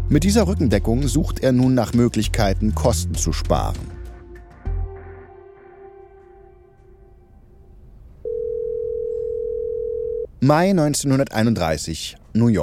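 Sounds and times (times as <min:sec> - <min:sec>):
speech: 0:00.1 - 0:04.0, 0:10.4 - 0:12.6
phone line electronic ringing tone while waiting for answer: 0:08.2 - 0:10.3.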